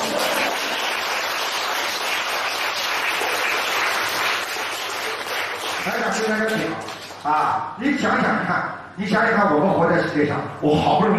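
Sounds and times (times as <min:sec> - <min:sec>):
live audience applause at a talk: 0:00.0 - 0:07.2
speech: 0:05.9 - 0:11.1.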